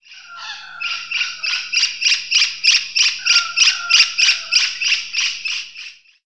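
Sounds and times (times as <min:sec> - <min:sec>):
bird harsh chattering call: 0:00.0 - 0:05.9.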